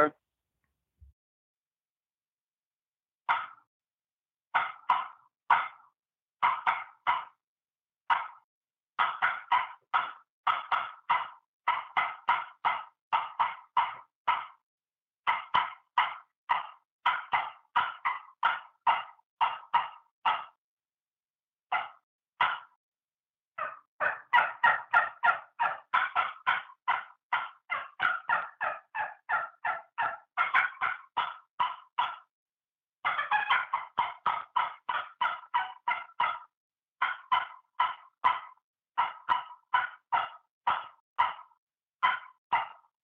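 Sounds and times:
hand-worked turkey call giving cutting notes and aggressive yelping: 4.6s - 5.8s, 6.4s - 7.4s, 8.1s - 8.4s, 9.0s - 14.6s, 15.3s - 20.6s, 21.7s - 22.7s, 23.6s - 32.3s, 33.0s - 42.9s.

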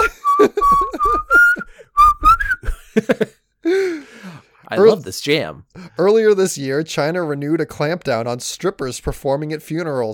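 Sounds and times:
person whistling a bouncy tune: 0.0s - 2.7s
speech: 4.8s - 10.1s.

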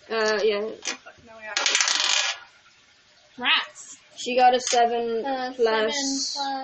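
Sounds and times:
speech: 0.1s - 0.9s, 3.4s - 6.6s
twenty-sided die tumbling and rattling across a tabletop in a tabletop game: 1.6s - 2.4s.

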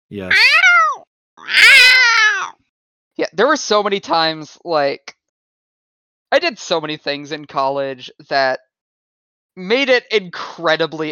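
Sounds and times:
speech: 0.1s - 0.6s, 1.4s - 1.8s, 3.2s - 5.2s, 6.3s - 8.7s, 9.6s - 11.1s
person imitating a cat meowing: 0.1s - 2.5s.

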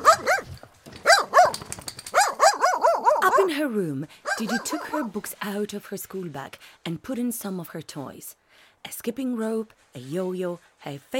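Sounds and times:
dog barking: 0.0s - 3.6s, 4.3s - 5.1s
speech: 3.6s - 11.1s.

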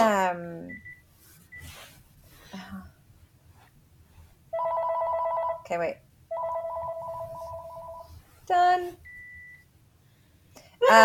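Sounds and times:
new cordless house phone ringing: 4.6s - 5.6s, 6.3s - 8.1s
speech: 5.7s - 6.1s, 8.5s - 9.1s.

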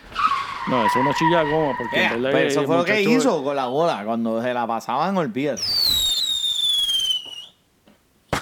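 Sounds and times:
speech: 0.7s - 6.1s
firework sound effect whistle: 5.6s - 7.6s.

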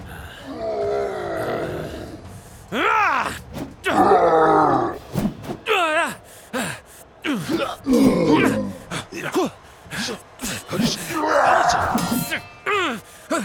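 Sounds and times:
elk owl creature groaning and grunting in agreement: 0.0s - 5.0s, 5.7s - 9.4s, 10.0s - 13.4s.

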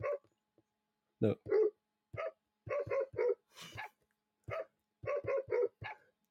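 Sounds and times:
dog barks strung together into a tune: 0.0s - 0.3s, 1.4s - 6.1s
speech: 1.2s - 1.6s.

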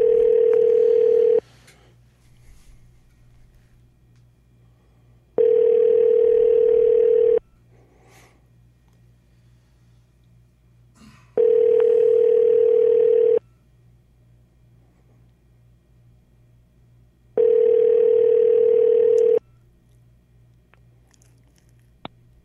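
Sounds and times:
telephone ringback tone heard over the line: 0.0s - 1.4s, 5.4s - 7.4s, 11.4s - 13.4s, 17.4s - 19.4s.

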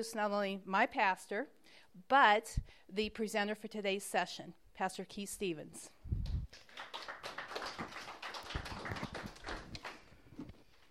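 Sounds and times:
speech: 0.0s - 6.6s
audience applause: 6.5s - 10.1s.

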